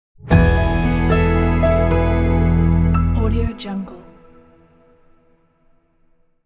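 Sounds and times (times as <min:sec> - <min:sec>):
modern bright positive logo jingle: 0:00.3 - 0:04.7.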